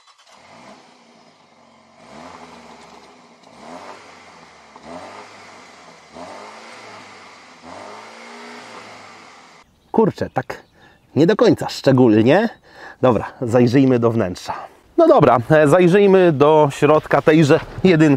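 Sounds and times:
car engine revving through rear exhaust system: 0.0s - 9.6s
speech: 10.0s - 18.1s.

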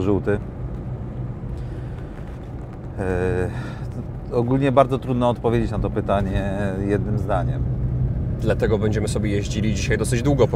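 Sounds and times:
speech: 0.0s - 0.6s, 3.0s - 7.8s, 8.4s - 10.5s
small Fiat 126p engine droning from inside the cabin while driving around Kraków: 0.0s - 10.5s.

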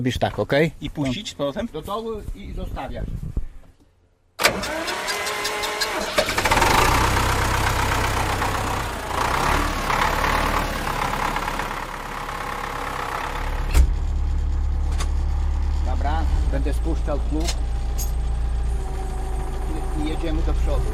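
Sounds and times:
speech: 0.0s - 3.4s, 4.6s - 5.1s, 16.6s - 17.8s, 20.2s - 20.9s
vehicle engine cranked on the starter, starting and running: 4.4s - 20.9s.

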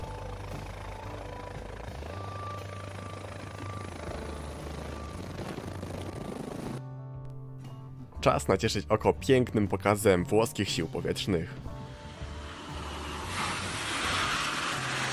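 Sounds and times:
helicopter landing: 0.0s - 6.8s, 11.6s - 15.1s
speech: 8.2s - 11.6s.

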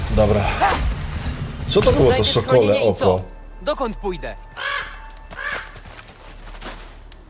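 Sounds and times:
speech: 0.2s - 0.8s, 1.7s - 4.7s
raven cawing: 4.5s - 6.2s.

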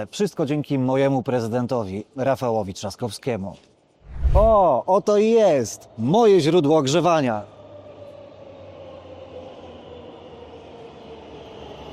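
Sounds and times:
speech: 0.0s - 3.7s, 4.3s - 7.5s
subway train running: 7.6s - 11.9s.

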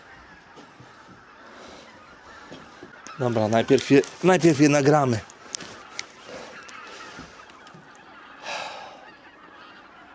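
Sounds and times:
large flock of geese honking: 0.0s - 10.1s
speech: 3.2s - 5.3s.

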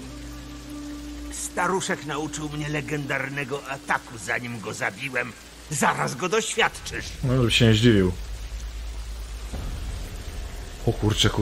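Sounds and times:
heavy rain: 0.0s - 11.4s
speech: 1.6s - 8.3s, 10.9s - 11.4s
deep rumble of thunder: 6.5s - 11.4s.

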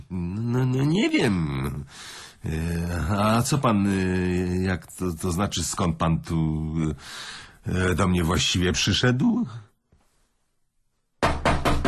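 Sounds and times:
speech: 0.1s - 9.7s
loud sharp knocking on a door: 11.2s - 11.8s.

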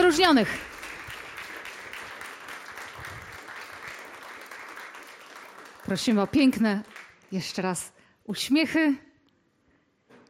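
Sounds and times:
audience applauding award winners at a historical book ceremony: 0.0s - 7.4s
speech: 0.1s - 0.7s, 5.9s - 9.1s.

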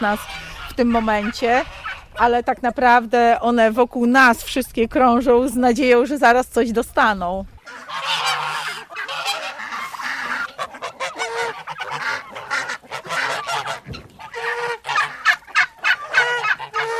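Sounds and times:
female turkey calling in nasal bursts: 0.0s - 2.3s, 7.6s - 16.9s
chickens, ducks, geese, turkeys and guinea fowl clucking and honking in a barnyard: 0.0s - 2.7s, 7.6s - 16.9s
speech: 0.0s - 7.9s.

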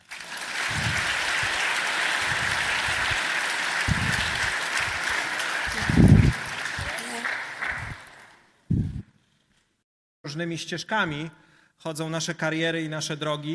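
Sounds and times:
audience applause: 0.0s - 8.4s
speech: 10.4s - 13.5s.

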